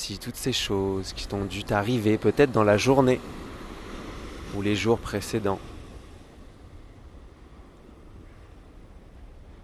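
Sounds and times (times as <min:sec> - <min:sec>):
speech: 0:00.0 - 0:03.4, 0:04.5 - 0:05.7
ocean surf waves washing on shore: 0:00.0 - 0:09.6.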